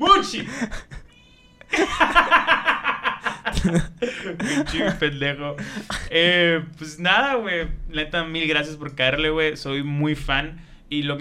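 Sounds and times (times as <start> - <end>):
speech: 0.0 - 1.0, 3.6 - 11.1
cat meowing: 1.1 - 1.7
laughter: 1.7 - 6.2.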